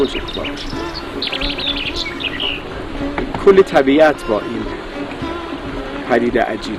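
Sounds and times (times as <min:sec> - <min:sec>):
speech: 0:00.0 - 0:01.7, 0:03.4 - 0:04.7, 0:06.1 - 0:06.7
nightingale singing: 0:00.0 - 0:06.7.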